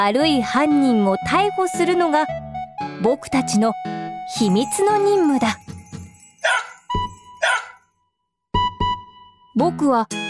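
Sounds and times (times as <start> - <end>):
speech: 0.0 - 2.4, 3.0 - 5.6, 9.6 - 10.2
beagle barking and yipping: 6.4 - 7.8.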